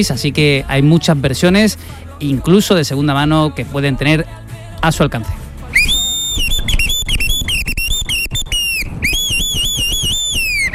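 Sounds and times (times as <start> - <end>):
speech: 0.0 - 5.8
loud whistled melody sliding and trilling between notes: 5.7 - 10.7.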